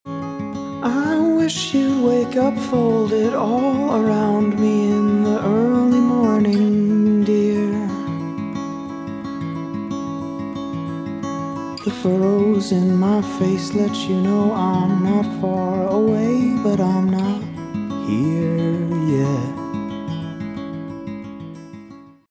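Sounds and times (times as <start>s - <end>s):
guitar with EMT medium decay reverb: 0.1s - 22.2s
vocals with EMT medium decay reverb: 0.8s - 8.1s, 11.8s - 19.7s.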